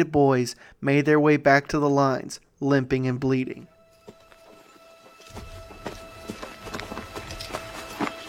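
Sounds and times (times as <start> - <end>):
speech: 0.0 - 3.7
horse hooves thudding and clattering as a general rides forward: 3.8 - 8.2.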